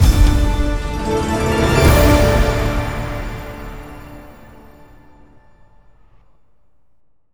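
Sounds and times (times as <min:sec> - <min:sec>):
long large win sound: 0:00.0 - 0:04.3.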